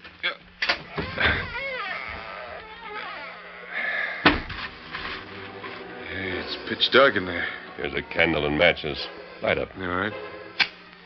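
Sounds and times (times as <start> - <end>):
creaking wavering hinges of an old cellar door: 0.6 - 11.0
heavy wooden outside cellar double door groaning open: 0.7 - 11.0
solid thud of a wooden cellar door: 4.2 - 4.7
speech: 6.7 - 10.3.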